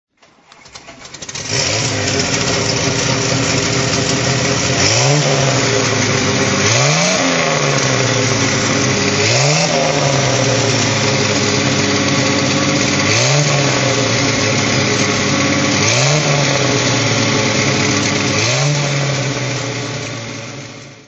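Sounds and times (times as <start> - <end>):
car engine throttle: 1.1 - 21.0.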